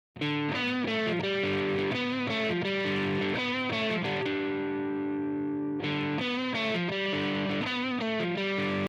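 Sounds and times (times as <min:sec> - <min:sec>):
guitar: 0:00.2 - 0:08.8.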